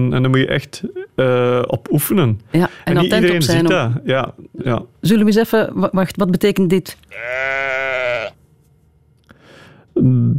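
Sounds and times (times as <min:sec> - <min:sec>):
speech: 0:00.0 - 0:07.4, 0:10.0 - 0:10.3
hungry sheep bleating: 0:07.1 - 0:08.4.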